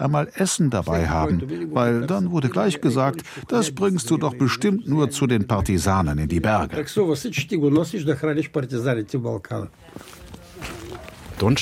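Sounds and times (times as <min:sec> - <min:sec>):
speech: 0:00.0 - 0:10.3, 0:11.4 - 0:11.6
man's slow footsteps on an old cobblestone street: 0:09.9 - 0:11.6.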